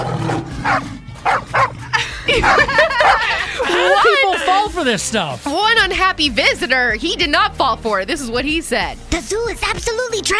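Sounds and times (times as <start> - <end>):
large dog barking at a zoo: 0.0 - 3.4
laughter: 1.8 - 4.8
speech: 4.8 - 10.3.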